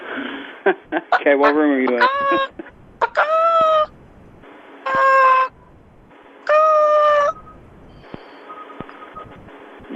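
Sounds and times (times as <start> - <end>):
speech: 0.6 - 2.6
person imitating chicken clucking bawks: 1.1 - 3.9, 4.8 - 5.6, 6.4 - 7.4.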